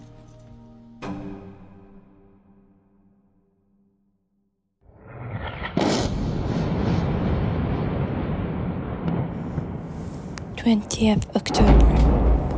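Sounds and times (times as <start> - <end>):
deep roar: 4.8 - 9.3
explosions from airstrikes: 4.9 - 10.6, 11.2 - 12.5
long loud rumbling boom: 4.9 - 12.5
sharp heavy blast: 5.0 - 10.6, 11.5 - 12.5
speech: 10.6 - 12.1.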